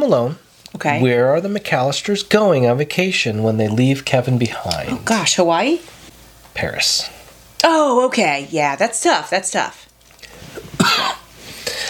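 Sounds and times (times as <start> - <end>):
speech: 0.0 - 6.0, 6.6 - 9.9
sharp cough: 10.7 - 11.3.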